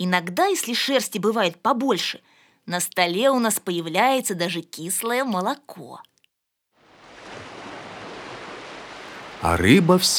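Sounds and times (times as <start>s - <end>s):
speech: 0.0s - 6.1s, 9.4s - 10.1s
roar of waves on a restless sea after a storm washing onto a sandy shore: 6.8s - 10.1s.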